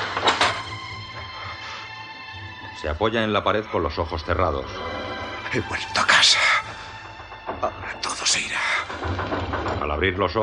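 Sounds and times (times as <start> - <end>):
door bolt sliding shut: 0.0 - 0.8
speech: 2.8 - 6.5, 7.6 - 10.4.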